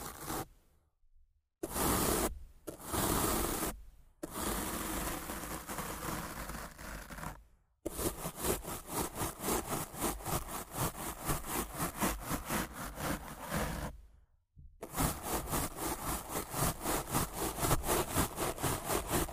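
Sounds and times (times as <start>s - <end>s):
brushing on a microphone: 0.0s - 0.5s, 1.6s - 14.0s, 14.8s - 19.3s
rough scratching on a microphone: 0.0s - 0.5s, 4.3s - 14.0s, 14.8s - 19.3s.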